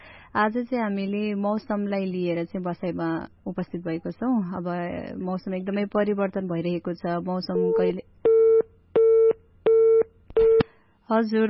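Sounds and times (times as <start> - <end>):
speech: 0.4 - 8.1, 11.1 - 11.4
telephone busy tone after a call was disconnected: 7.5 - 10.6.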